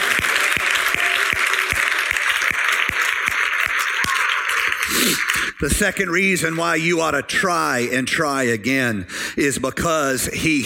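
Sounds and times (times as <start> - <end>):
sharp claps: 0.0 - 6.8
large crowd applauding: 0.0 - 7.0
speech: 5.6 - 10.6.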